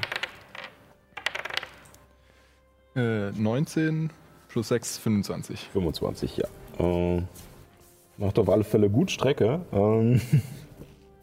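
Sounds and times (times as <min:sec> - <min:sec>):
two dice clattering across a hard tabletop: 0:00.0 - 0:02.0
speech: 0:03.0 - 0:07.5, 0:08.2 - 0:10.6.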